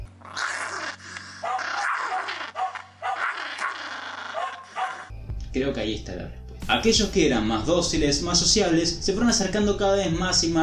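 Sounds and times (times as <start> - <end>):
dog snarling and barking aggressively: 0.2 - 5.1
speech: 5.5 - 10.6.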